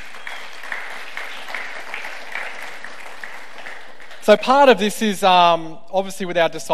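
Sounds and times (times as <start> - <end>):
room full of people applauding: 0.0 - 4.8
speech: 4.3 - 6.7.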